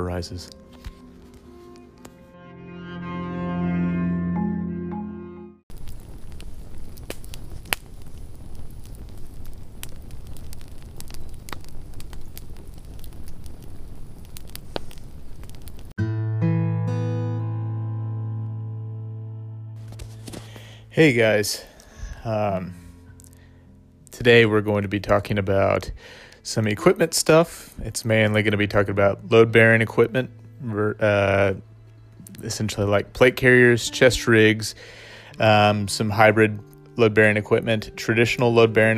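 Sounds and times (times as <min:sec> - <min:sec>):
speech: 0:00.0 - 0:00.9, 0:21.0 - 0:22.8, 0:24.2 - 0:31.7, 0:32.4 - 0:38.9
campfire crackling: 0:00.0 - 0:02.2, 0:05.7 - 0:16.0, 0:19.8 - 0:38.9
tonal music: 0:00.0 - 0:05.6, 0:16.0 - 0:20.2, 0:29.1 - 0:38.9.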